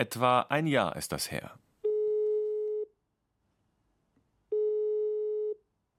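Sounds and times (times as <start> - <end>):
speech: 0.0 - 1.6
telephone line tones as a phone call is placed: 1.8 - 2.9, 4.5 - 5.6.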